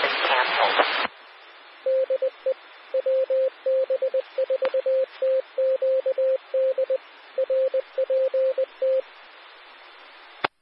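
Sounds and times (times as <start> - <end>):
radio static hiss: 0.0 - 10.6
single-pitched radio net tone keying on and off on a severe weather spotter net: 1.8 - 9.0.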